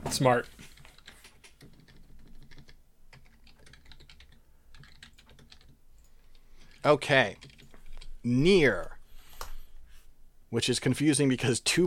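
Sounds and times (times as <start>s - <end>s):
speech: 0.1s - 0.7s, 6.8s - 7.5s, 8.2s - 9.0s, 10.5s - 11.8s
typing on a computer keyboard: 0.7s - 8.1s.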